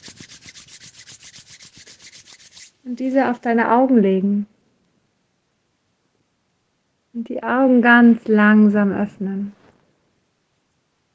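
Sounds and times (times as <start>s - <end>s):
hands rubbing together in a guided relaxation exercise: 0.0s - 3.4s
speech: 2.8s - 4.5s, 7.3s - 9.6s.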